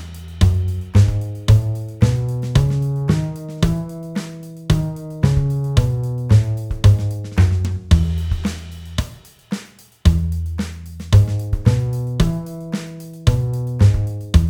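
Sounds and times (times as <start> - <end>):
concert E scales played: 0.5 - 8.4, 11.2 - 14.4.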